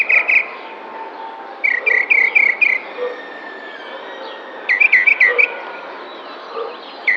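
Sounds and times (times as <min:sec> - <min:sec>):
tropical mockingbird singing in a neighbourhood park in San Cristóbal de Las Casas: 0:00.0 - 0:00.7, 0:01.6 - 0:03.2, 0:04.7 - 0:05.5, 0:06.1 - 0:07.1.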